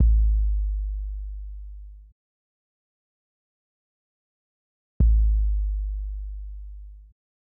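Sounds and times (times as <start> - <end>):
hip hop kick drum track in A minor: 0.0 - 0.8, 5.0 - 7.1.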